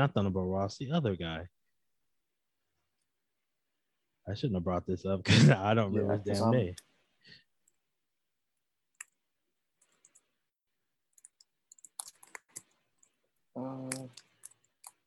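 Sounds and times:
speech: 0.0s - 1.6s, 4.3s - 7.4s, 13.6s - 14.2s
typing on a computer keyboard: 9.8s - 10.3s, 11.1s - 13.1s.

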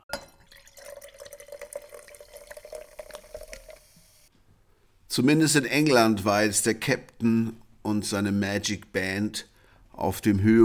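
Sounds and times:
champagne pouring into a glass: 0.1s - 4.3s
fine fizzing crackle of champagne: 0.4s - 4.3s
speech: 5.2s - 10.6s.

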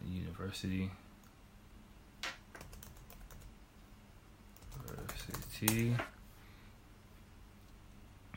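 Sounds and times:
speech: 0.1s - 1.0s, 5.6s - 6.1s
typing on a computer keyboard: 2.5s - 3.5s, 4.6s - 5.9s.

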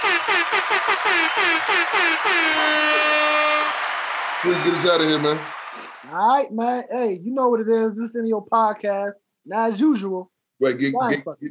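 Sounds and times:
speech: 0.2s - 2.4s, 4.4s - 11.4s
loud blaring air horn blasts: 2.3s - 6.1s.

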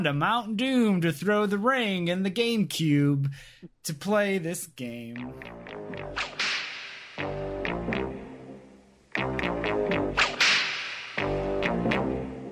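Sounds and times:
speech: 0.0s - 6.3s
loud steady musical backing: 5.0s - 12.5s
whip cracks: 6.2s - 7.2s, 10.2s - 11.2s.

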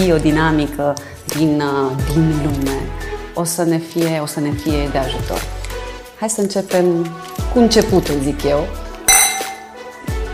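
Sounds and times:
speech: 0.0s - 5.6s, 6.2s - 8.8s
wine glasses clinking in a toast: 9.1s - 9.7s.

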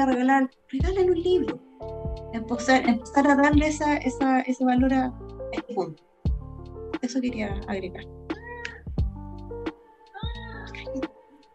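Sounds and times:
speech: 0.0s - 6.1s, 7.0s - 8.3s
cat meowing: 8.3s - 8.9s.

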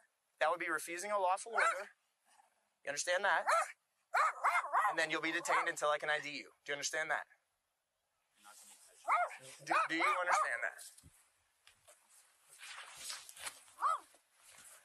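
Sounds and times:
speech: 0.4s - 2.0s, 2.8s - 3.8s, 4.9s - 7.4s, 9.1s - 11.2s
dog barking: 1.6s - 1.9s, 3.4s - 5.8s, 9.0s - 10.7s, 13.8s - 14.1s.

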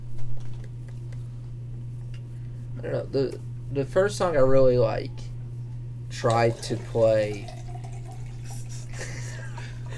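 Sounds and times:
low steady hum: 0.0s - 9.9s
speech: 2.8s - 5.3s, 6.1s - 7.6s
water pouring from a tap into a water bottle: 6.6s - 8.5s.

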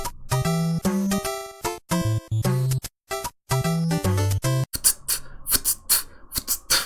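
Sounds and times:
chiptune melody of bright square-wave tones: 0.0s - 4.6s.

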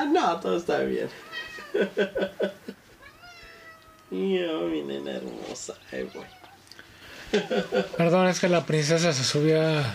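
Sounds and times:
faint noise: 0.0s - 9.9s
speech: 0.2s - 2.8s, 4.1s - 6.4s, 7.3s - 9.9s
cat meowing: 1.1s - 1.9s, 3.0s - 6.7s
laughter: 1.6s - 2.8s, 7.3s - 8.0s.

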